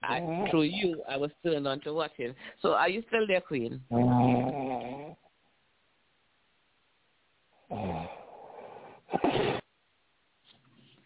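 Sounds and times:
speech: 0.1 - 5.0
person snoring: 3.9 - 5.2, 7.7 - 9.6.

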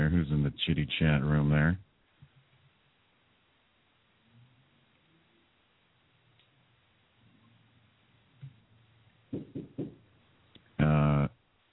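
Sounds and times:
speech: 0.1 - 1.9
knocking on a studio door: 9.3 - 10.0.

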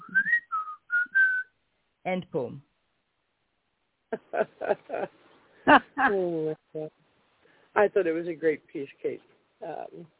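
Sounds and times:
person whistling a short melodic phrase: 0.0 - 1.5
speech: 2.1 - 2.7, 4.1 - 7.0, 7.8 - 10.1
laughter: 4.2 - 5.1, 5.7 - 6.6.

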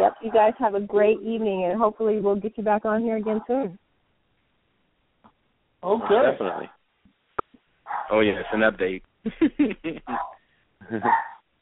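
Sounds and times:
speech: 0.2 - 3.8, 5.8 - 6.8, 7.9 - 11.3
dog barking: 5.9 - 6.7, 7.8 - 8.8, 10.1 - 10.4, 11.0 - 11.4
dog whining bark: 7.9 - 8.7, 10.1 - 10.4, 11.0 - 11.4
laughter: 8.2 - 11.2.

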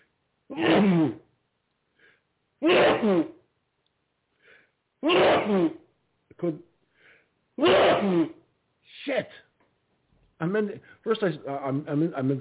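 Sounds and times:
speech: 0.5 - 1.2, 2.6 - 3.3, 5.0 - 5.8, 6.4 - 6.7, 7.6 - 8.4, 10.4 - 12.3
sneezing fit: 0.5 - 1.3, 2.6 - 3.4, 5.0 - 5.9, 7.6 - 9.2
short sharp inhales between sneezes: 1.9 - 2.3, 4.4 - 4.8, 6.9 - 7.4.

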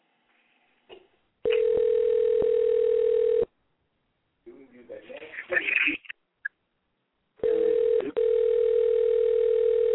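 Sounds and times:
telephone ringback tone on an outgoing call: 1.5 - 3.5, 7.4 - 9.9
voices: 4.5 - 6.1.

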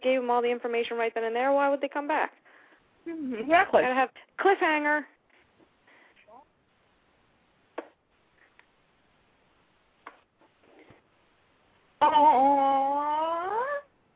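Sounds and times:
speech: 0.3 - 5.1, 12.0 - 13.2
faint clicks and taps: 10.0 - 11.1.

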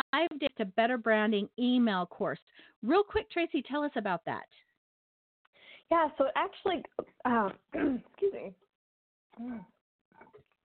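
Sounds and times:
speech: 0.1 - 4.6, 5.9 - 8.6, 9.4 - 9.7
person clearing throat: 7.7 - 8.2, 9.4 - 9.7.

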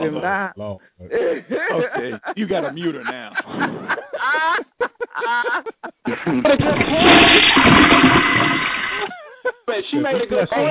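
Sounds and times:
speech: 0.0 - 8.7, 9.8 - 10.6
laughter: 1.1 - 8.0, 8.9 - 10.6
toilet flushing: 6.6 - 9.1.

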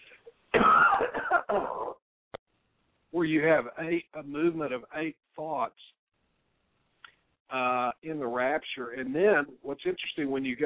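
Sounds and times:
person clearing throat: 0.6 - 2.0
person coughing: 0.6 - 2.0
speech: 3.2 - 6.0, 7.5 - 10.6.

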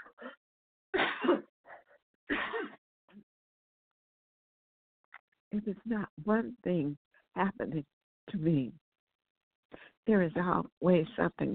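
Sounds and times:
person coughing harshly: 1.0 - 1.4, 2.3 - 2.8
speech: 5.5 - 8.8, 9.7 - 11.5.

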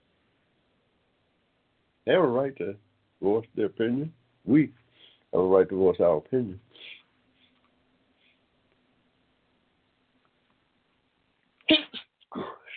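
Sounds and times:
speech: 2.1 - 6.7
short breathy burst: 4.8 - 5.3, 6.7 - 8.5
sneeze: 11.6 - 12.7.

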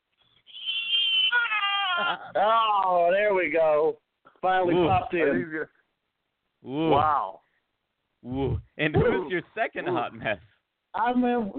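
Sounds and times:
person imitating a pig squealing: 0.4 - 2.9
speech: 2.0 - 5.8, 6.6 - 7.4, 8.2 - 11.5.

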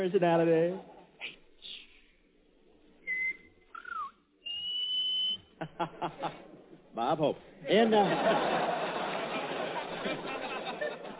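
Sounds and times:
speech: 0.0 - 1.4, 5.6 - 9.0
person whistling a reply: 3.0 - 5.5
laughter: 5.6 - 6.6, 7.7 - 11.1.

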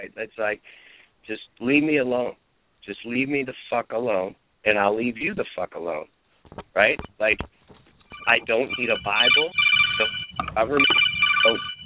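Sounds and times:
speech: 0.0 - 11.7
mobile phone ringtone with a sci-fi communicator-style chirp: 8.1 - 11.8.

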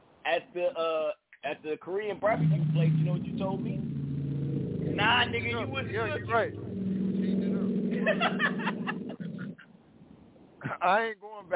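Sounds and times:
speech: 0.3 - 4.0, 4.9 - 6.7, 8.0 - 8.5, 10.8 - 11.5
voices chattering: 1.9 - 3.8, 4.9 - 8.7
car engine idling: 2.2 - 9.0
laughter: 7.9 - 9.6.

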